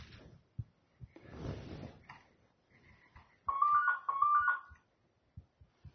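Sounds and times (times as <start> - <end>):
telephone ringing with a warbling electronic tone: 3.5 - 4.8.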